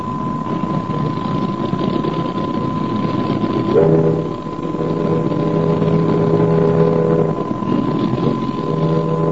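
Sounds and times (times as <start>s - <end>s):
boat engine on the Tagus river in the Alfama: 0.0s - 9.2s
long deep ship horn blast: 3.7s - 9.2s.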